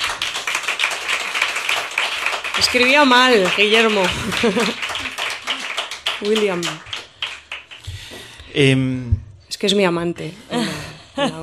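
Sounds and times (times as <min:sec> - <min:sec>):
applause from a small group after a poem recitation: 0:00.0 - 0:08.4
speech: 0:02.6 - 0:04.9, 0:06.2 - 0:06.9, 0:08.5 - 0:11.4
laughter: 0:03.8 - 0:05.8.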